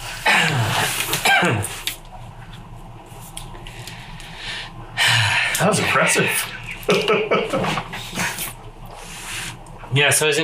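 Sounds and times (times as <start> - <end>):
person coughing: 0.2 - 1.8
speech: 1.4 - 1.9, 5.6 - 8.2, 9.9 - 10.4
laughter: 6.7 - 8.2.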